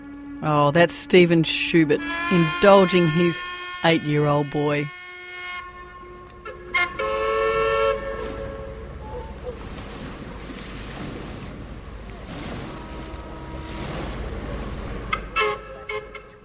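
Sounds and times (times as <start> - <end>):
speech: 0.4 - 5.0
steam whistle of a paddle steamer tooting at anniversary celebrations: 1.8 - 3.9, 4.9 - 9.0, 12.6 - 13.9, 15.2 - 16.4.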